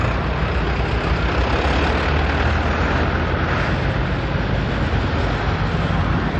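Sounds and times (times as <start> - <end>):
caravan of farm tractors and trucks arriving: 0.0 - 6.3.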